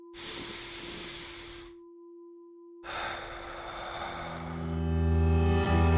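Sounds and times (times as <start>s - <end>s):
deep breath in and out: 0.0s - 1.8s, 2.8s - 5.0s.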